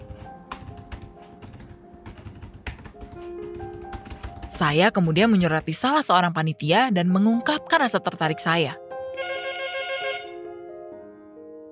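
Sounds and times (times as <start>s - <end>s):
speech: 4.6s - 8.8s
phone ringtone playing a bright melodic electronic tune: 9.1s - 10.4s.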